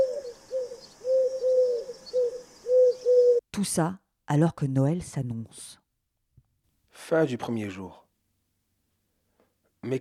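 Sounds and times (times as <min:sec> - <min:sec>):
pigeons cooing: 0:00.0 - 0:03.4
speech: 0:03.6 - 0:05.8, 0:07.0 - 0:08.0.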